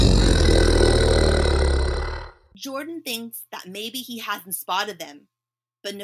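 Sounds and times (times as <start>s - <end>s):
snow monster roaring in a cave: 0.0s - 2.4s
speech: 2.7s - 6.0s.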